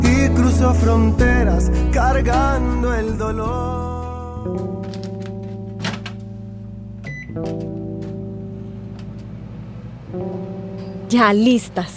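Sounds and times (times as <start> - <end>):
speech: 0.6 - 5.0, 7.4 - 7.8, 11.1 - 11.9
microwave oven running with electrical hum: 6.2 - 11.8.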